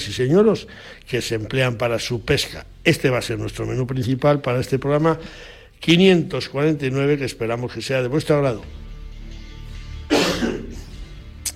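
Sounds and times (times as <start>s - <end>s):
speech: 0.1s - 8.8s
person coughing: 10.1s - 10.9s.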